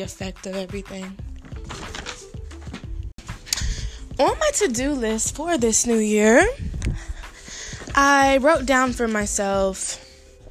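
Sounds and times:
speech: 0:00.0 - 0:01.9, 0:04.2 - 0:07.0, 0:08.0 - 0:10.0
paper rustling and crinkling: 0:01.5 - 0:02.9.

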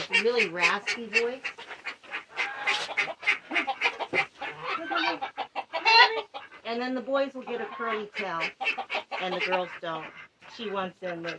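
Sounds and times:
female duck quacking: 0:00.0 - 0:11.3
speech: 0:00.2 - 0:01.6, 0:06.7 - 0:11.3.

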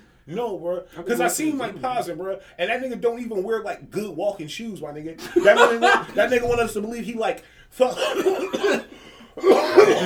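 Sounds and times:
speech: 0:00.3 - 0:10.0
laughter: 0:05.2 - 0:06.7
harsh coughs: 0:07.9 - 0:10.0.

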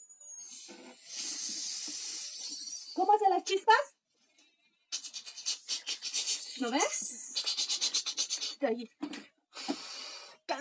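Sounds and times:
person imitating welding torch hiss with breath: 0:00.4 - 0:03.0, 0:05.0 - 0:08.6, 0:09.6 - 0:10.4
speech: 0:03.0 - 0:04.0, 0:06.6 - 0:07.4, 0:08.6 - 0:09.2.

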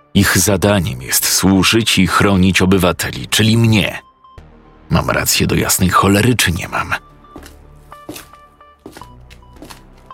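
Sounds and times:
speech: 0:00.2 - 0:04.1, 0:04.9 - 0:07.1
footsteps echoing in a stairwell: 0:07.3 - 0:10.1.

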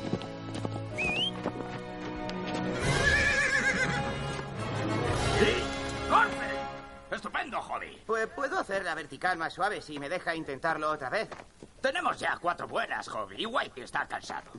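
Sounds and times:
hooves clip-clopping: 0:00.0 - 0:06.9, 0:08.6 - 0:14.5
black horse whinnying: 0:02.8 - 0:04.2
speech: 0:07.5 - 0:14.5.

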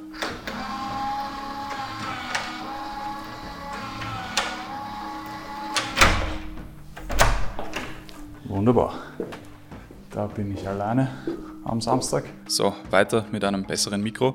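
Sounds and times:
motorized door lock opened via smartphone app whirring: 0:00.0 - 0:08.0
speech: 0:08.5 - 0:09.5, 0:10.2 - 0:14.3.

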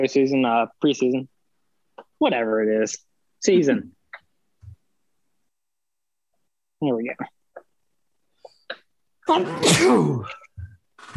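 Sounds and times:
speech: 0:00.0 - 0:01.3, 0:02.2 - 0:04.0, 0:06.8 - 0:07.4, 0:09.3 - 0:10.4
loud sneeze: 0:09.4 - 0:10.4.

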